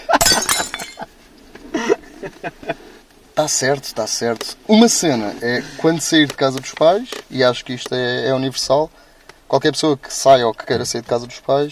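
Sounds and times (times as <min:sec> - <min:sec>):
glass smashing: 0:00.1 - 0:01.1
glass shards clinking and tinkling as they fall and settle: 0:00.2 - 0:01.0
laughter: 0:01.7 - 0:03.0
speech: 0:02.4 - 0:11.7.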